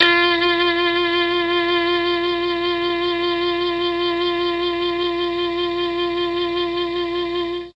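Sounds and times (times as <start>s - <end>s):
saxophone: 0.0s - 7.7s.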